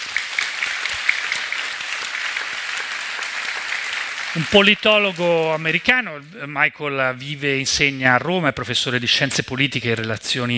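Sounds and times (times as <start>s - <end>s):
audience applause greeting a guest: 0.0s - 6.4s
speech: 4.4s - 10.5s.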